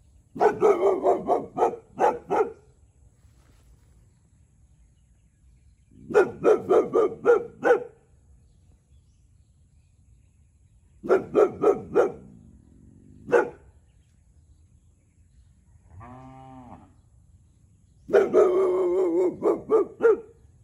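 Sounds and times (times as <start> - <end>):
Boxer dog barking sharply: 0.4 - 2.7, 6.0 - 8.0, 11.0 - 12.3, 13.3 - 13.7, 18.1 - 20.4.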